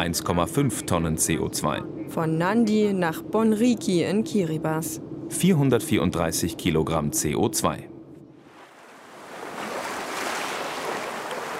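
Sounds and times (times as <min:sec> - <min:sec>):
speech: 0:00.0 - 0:07.9
ocean surf washing in at a lagoon shore: 0:08.4 - 0:11.5.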